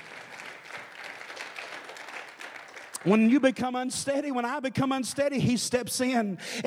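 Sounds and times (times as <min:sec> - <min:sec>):
audience clapping hands in praise: 0:00.0 - 0:03.6
speech: 0:03.0 - 0:06.6.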